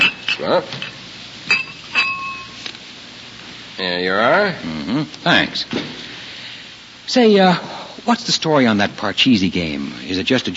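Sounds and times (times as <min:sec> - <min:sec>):
glasses clinking as sherry is served at dinner: 0:00.0 - 0:02.6
speech: 0:00.4 - 0:01.6, 0:03.8 - 0:05.9, 0:07.1 - 0:10.5.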